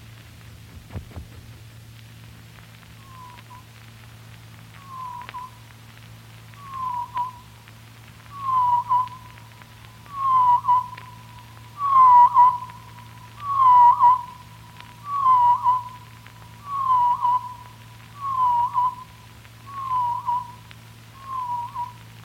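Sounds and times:
steady low hum: 0.0 - 22.2
blackpoll warbler song slowed down: 2.9 - 3.8, 4.7 - 5.7, 6.4 - 22.2.

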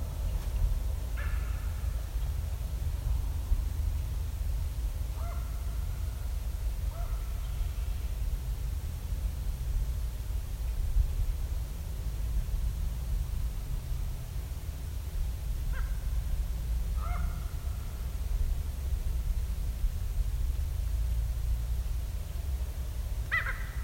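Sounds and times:
low rumble of wind-like noise: 0.0 - 23.8
hoarse raven calls: 1.2 - 1.9, 5.2 - 5.8, 6.9 - 7.5, 15.7 - 16.0, 17.0 - 17.6, 23.3 - 23.8.

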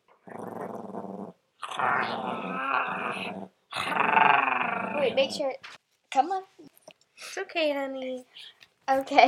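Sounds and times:
person imitating a growling dog with their voice: 0.3 - 5.5
speech: 1.8 - 4.0, 5.0 - 9.2.

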